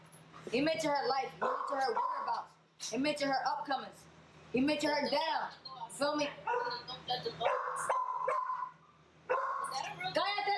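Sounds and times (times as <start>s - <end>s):
speech: 0.4s - 8.0s
dogs barking and yelping: 6.5s - 6.8s, 7.4s - 9.8s
dog whining: 7.4s - 9.8s.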